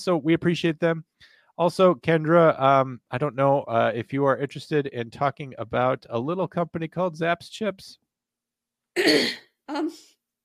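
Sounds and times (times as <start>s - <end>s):
speech: 0.0s - 8.0s, 9.0s - 10.2s
person clearing throat: 9.0s - 9.4s.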